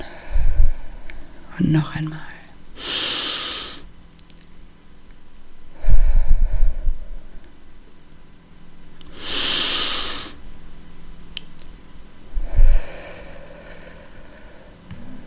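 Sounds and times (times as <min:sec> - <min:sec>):
deep breathing in through the nose and out through the mouth: 0:00.0 - 0:01.5, 0:02.8 - 0:03.9, 0:05.7 - 0:07.5, 0:09.1 - 0:10.4, 0:12.3 - 0:15.2
speech: 0:01.6 - 0:02.3.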